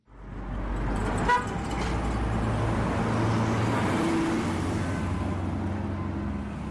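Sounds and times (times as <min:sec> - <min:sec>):
dense city traffic rumbling: 0:00.0 - 0:06.6
car horn toot: 0:01.2 - 0:01.5.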